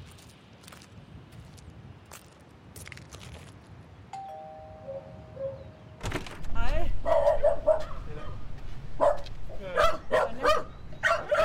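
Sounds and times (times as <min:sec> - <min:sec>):
two small dogs barking at a small house: 0:07.0 - 0:08.4, 0:09.0 - 0:11.4.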